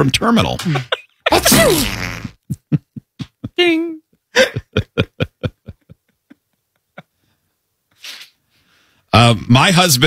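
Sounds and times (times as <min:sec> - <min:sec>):
speech: 0:00.0 - 0:02.2, 0:03.6 - 0:04.6, 0:09.2 - 0:10.0
laughter: 0:00.6 - 0:01.8, 0:02.5 - 0:03.6, 0:04.4 - 0:07.2
person sneezing: 0:01.3 - 0:02.4.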